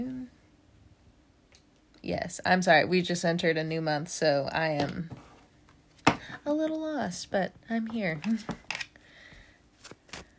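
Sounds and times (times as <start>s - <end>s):
speech: 2.1s - 5.2s, 6.4s - 8.6s
tarot cards being shuffled: 9.8s - 10.3s.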